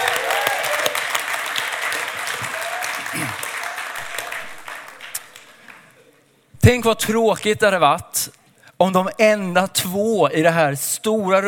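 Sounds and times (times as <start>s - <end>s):
large audience applause: 0.0s - 6.0s
speech: 6.7s - 11.4s.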